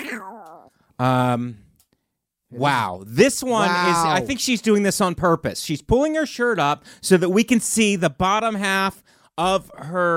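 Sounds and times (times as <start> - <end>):
person imitating a cat meowing: 0.0 - 0.7, 3.5 - 4.3
speech: 1.0 - 1.6, 2.5 - 10.1.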